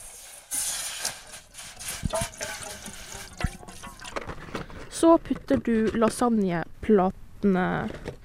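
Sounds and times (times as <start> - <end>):
water pouring into a small metal pot: 0.0 - 4.4
small metal pot clanking: 1.8 - 4.4
speech: 5.0 - 8.1.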